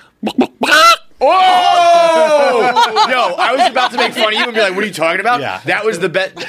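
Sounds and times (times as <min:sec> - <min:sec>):
person imitating a chicken clucking and squawking: 0:00.2 - 0:01.1
laughter: 0:02.2 - 0:05.1
speech: 0:03.1 - 0:06.4.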